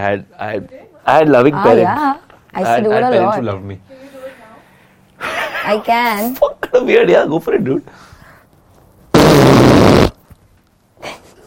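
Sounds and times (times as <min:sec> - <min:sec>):
speech: 0:00.0 - 0:04.1, 0:05.2 - 0:08.0
loud hand fart noise: 0:09.1 - 0:10.2.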